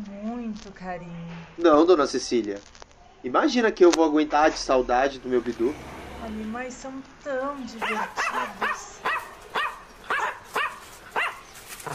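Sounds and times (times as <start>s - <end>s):
speech: 0.5s - 9.0s
dog barking: 7.8s - 11.9s.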